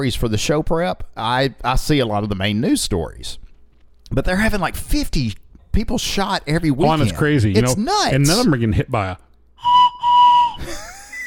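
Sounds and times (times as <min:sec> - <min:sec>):
speech: 0:00.0 - 0:03.4, 0:04.1 - 0:09.8
plastic 3D-printed whistle blasts: 0:09.6 - 0:10.6.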